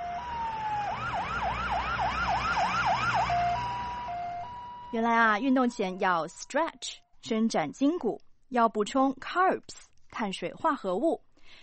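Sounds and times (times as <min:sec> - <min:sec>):
ambulance siren: 0:00.0 - 0:06.6
speech: 0:04.9 - 0:11.6.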